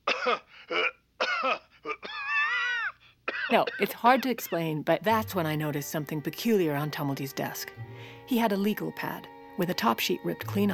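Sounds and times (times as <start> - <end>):
person coughing deliberately: 0.0 - 2.3, 3.3 - 4.6
speech: 0.2 - 1.6, 3.5 - 10.7.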